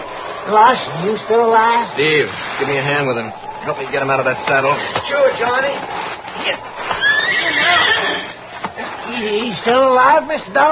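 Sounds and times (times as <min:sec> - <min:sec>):
speech: 0:00.5 - 0:08.3, 0:09.1 - 0:10.7
soft rustling: 0:02.2 - 0:10.7
horse whinnying in a high wavering neigh: 0:05.8 - 0:09.4.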